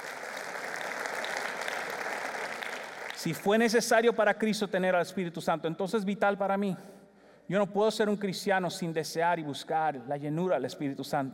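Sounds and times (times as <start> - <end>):
audience applauding: 0.0 - 3.4
speech: 3.2 - 11.3.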